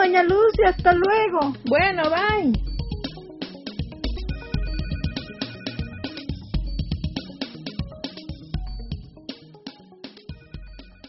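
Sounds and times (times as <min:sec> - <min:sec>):
speech: 0:00.2 - 0:02.7
telephone with loud melodic ringtone over a rhythmic beat: 0:03.8 - 0:07.0, 0:10.4 - 0:11.0.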